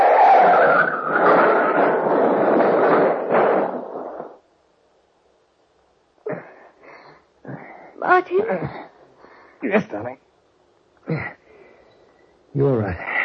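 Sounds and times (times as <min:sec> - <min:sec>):
car skid: 0:00.0 - 0:04.4
speech: 0:08.3 - 0:08.8, 0:09.7 - 0:10.2, 0:12.6 - 0:13.1.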